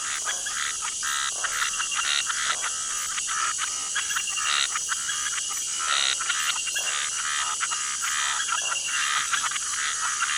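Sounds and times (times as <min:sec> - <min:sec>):
crickets droning high-pitched: 0:00.0 - 0:10.3
toads calling in a dense chorus at night: 0:00.0 - 0:10.3.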